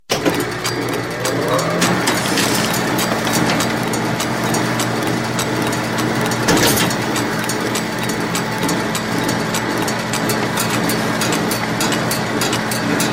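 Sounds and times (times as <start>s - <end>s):
photocopier running: 0.0s - 13.1s.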